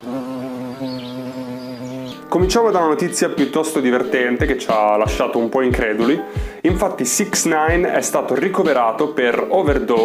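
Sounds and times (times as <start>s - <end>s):
steady insect buzz: 0.0s - 2.4s
speech: 2.3s - 10.0s.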